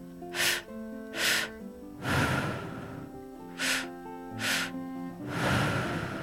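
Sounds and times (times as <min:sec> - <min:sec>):
deep breathing through the mouth in a guided exercise: 0:00.3 - 0:06.2.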